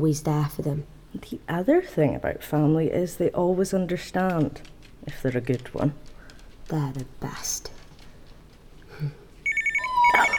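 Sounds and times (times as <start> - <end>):
speech: 0.0 - 6.1, 6.7 - 7.7, 9.0 - 9.2
telephone ringing with electronic warbling tone: 9.4 - 10.3.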